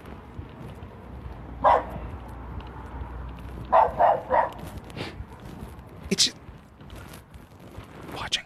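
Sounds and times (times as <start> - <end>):
steady noise: 0.0 - 8.4
dogs barking: 1.6 - 2.2, 3.6 - 4.8.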